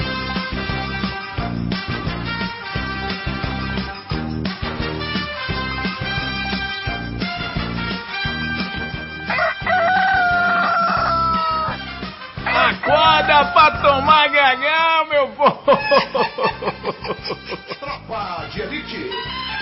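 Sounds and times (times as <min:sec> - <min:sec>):
thumping rhythmic backing: 0:00.0 - 0:09.9, 0:10.9 - 0:19.6
rooster crowing: 0:09.3 - 0:11.8, 0:12.4 - 0:14.8
laughter: 0:12.5 - 0:18.4.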